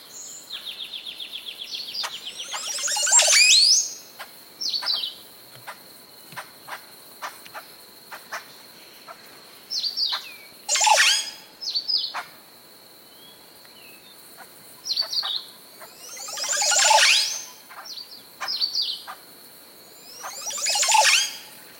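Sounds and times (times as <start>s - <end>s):
jacu calling: 0.6s - 4.0s, 9.8s - 12.3s, 14.4s - 19.2s, 20.0s - 21.7s.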